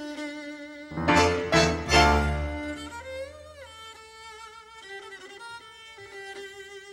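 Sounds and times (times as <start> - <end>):
flute melody: 0.9 - 3.5.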